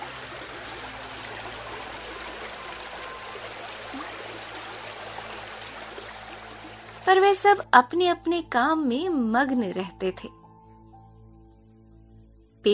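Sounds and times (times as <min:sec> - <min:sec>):
babbling river stream: 0:00.0 - 0:07.6
speech: 0:07.1 - 0:10.4.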